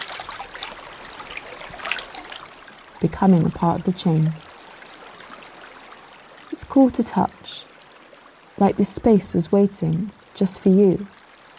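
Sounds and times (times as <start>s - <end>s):
hand running through river water: 0.0s - 2.6s
river water trickling and splashing: 0.0s - 11.5s
speech: 3.0s - 4.4s, 6.8s - 7.7s, 8.6s - 11.2s.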